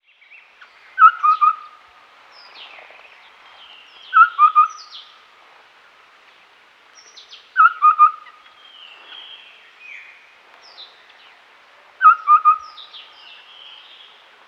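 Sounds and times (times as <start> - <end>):
streak-breasted scimitar babbler calling: 1.0 - 1.7, 4.1 - 5.0, 12.0 - 12.8.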